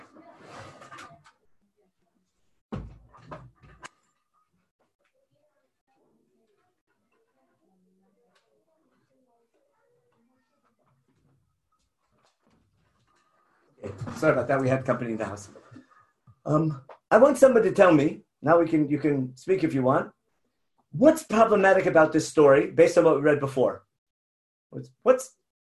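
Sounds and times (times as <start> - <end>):
door shut with solid knocks and a sharp thud: 2.7 - 3.9
speech: 13.8 - 15.6, 16.5 - 20.2, 20.9 - 23.8, 24.7 - 25.4.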